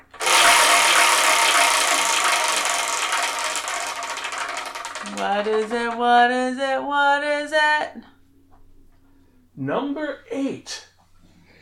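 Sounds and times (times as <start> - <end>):
wheel being spun with ratcheting clicks: 0.0 - 6.2
speech: 5.2 - 8.0, 9.6 - 10.8.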